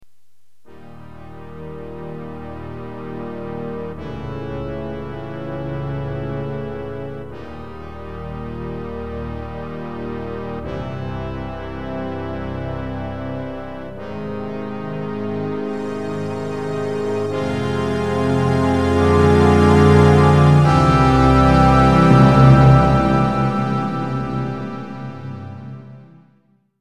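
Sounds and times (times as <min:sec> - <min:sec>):
dramatic buildup: 0:15.7 - 0:26.2.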